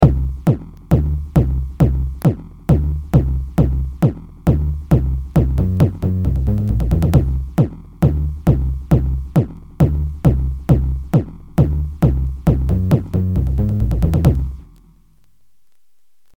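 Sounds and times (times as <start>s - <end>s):
drum and bass drum roll: 0.0s - 14.6s.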